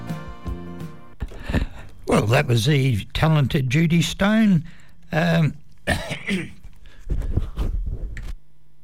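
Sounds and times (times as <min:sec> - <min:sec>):
speech: 0:02.1 - 0:07.5
man clearing his throat: 0:05.8 - 0:06.6
man coughing with harsh raspy hacking: 0:05.8 - 0:06.7.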